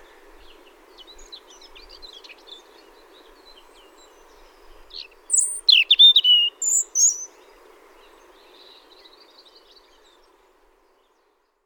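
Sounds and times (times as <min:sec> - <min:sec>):
European robin singing: 0:05.0 - 0:07.4.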